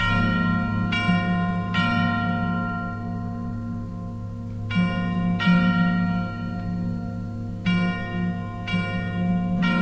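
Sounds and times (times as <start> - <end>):
bells ringing in resonant strikes: 0.0 - 9.8
steady low drone: 0.0 - 9.8.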